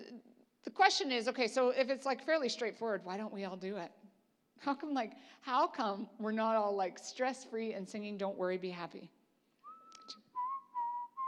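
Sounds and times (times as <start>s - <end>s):
speech: 0.8s - 4.0s, 4.6s - 9.2s
person whistling a short bright melody: 9.6s - 11.2s.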